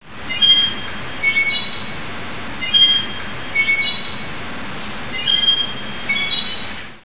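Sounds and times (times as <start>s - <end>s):
pillar squeaking: 0.3s - 2.0s, 2.6s - 4.3s, 5.1s - 6.8s.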